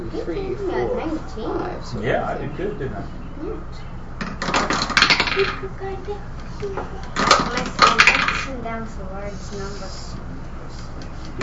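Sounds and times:
speech: 0:00.1 - 0:04.0, 0:05.4 - 0:10.8
dice rattling and clattering across a hard surface: 0:04.2 - 0:05.6, 0:07.2 - 0:08.5.

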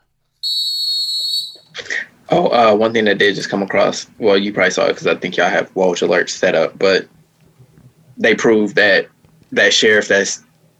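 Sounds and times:
sharp shrill whistle blast: 0:00.4 - 0:01.8
speech: 0:02.3 - 0:07.2, 0:08.2 - 0:10.5.

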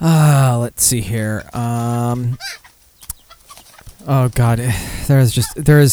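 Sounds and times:
speech: 0:00.0 - 0:02.7, 0:04.0 - 0:05.9
chickens clucking: 0:00.0 - 0:05.9
chicken squawking: 0:01.4 - 0:05.9.

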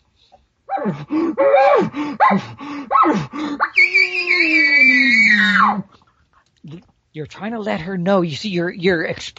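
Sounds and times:
long high whistling bugle from an elk bugle call: 0:00.8 - 0:05.9
speech: 0:00.8 - 0:05.9, 0:06.6 - 0:09.3.

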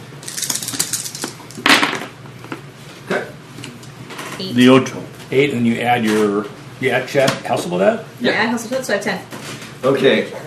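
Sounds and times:
three dice rolled during a tabletop role-playing game: 0:00.2 - 0:02.0
speech: 0:04.4 - 0:10.4.

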